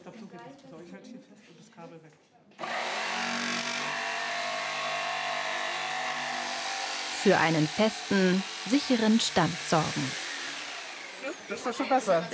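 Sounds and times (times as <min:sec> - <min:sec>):
speech: 0:00.5 - 0:02.8, 0:07.2 - 0:10.2, 0:11.5 - 0:12.3
electric circular saw running: 0:02.6 - 0:12.3.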